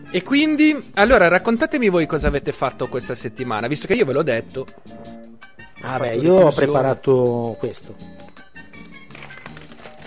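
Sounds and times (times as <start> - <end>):
speech: 0.1 - 5.1, 5.8 - 8.2
paper rustling and crinkling: 8.9 - 10.0.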